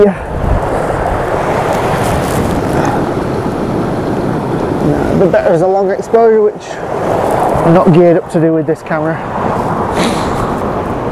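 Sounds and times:
speech: 0.0 - 0.2, 5.2 - 10.2
strong wind after a storm buffeting the microphone: 0.0 - 11.0.

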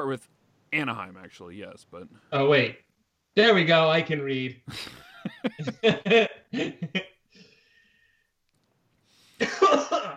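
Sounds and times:
speech: 0.0 - 7.1
laughter: 4.7 - 7.0
person coughing loudly into the microphone: 9.4 - 10.1.

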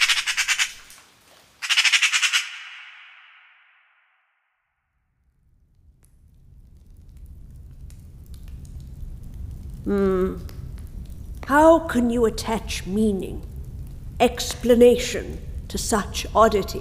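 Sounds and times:
single magpie squawking in a forest: 0.0 - 0.9, 1.6 - 3.0
low rumble: 5.4 - 14.6
speech: 9.8 - 10.5, 11.5 - 13.5, 14.2 - 16.7.

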